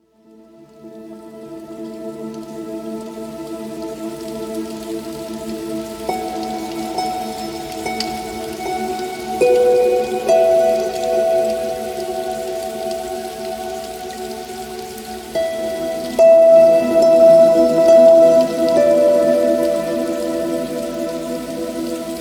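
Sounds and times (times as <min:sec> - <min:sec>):
natural spa synth pads: 0:05.1 - 0:22.1.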